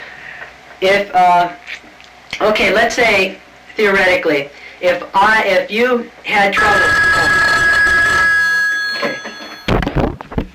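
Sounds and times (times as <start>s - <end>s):
speech: 0.8s - 1.8s, 2.4s - 7.4s
telephone ringing with a metallic tone: 6.6s - 10.5s.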